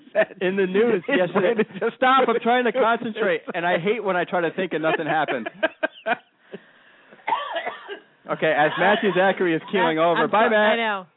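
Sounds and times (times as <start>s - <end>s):
laughter: 0.0s - 6.7s, 8.4s - 10.7s
speech: 0.2s - 6.3s, 8.3s - 11.1s
man coughing in short harsh bursts: 7.2s - 8.1s.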